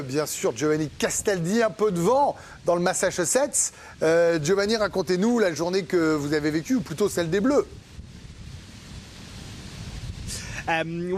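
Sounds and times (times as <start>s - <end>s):
speech: 0.0s - 7.8s, 10.7s - 11.1s
strong wind buffeting an outdoor microphone: 6.1s - 11.1s.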